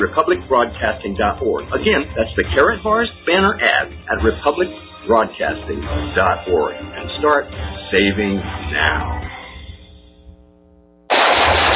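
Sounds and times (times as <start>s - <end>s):
speech: 0.0s - 9.2s
sustained gunfire: 11.1s - 11.7s.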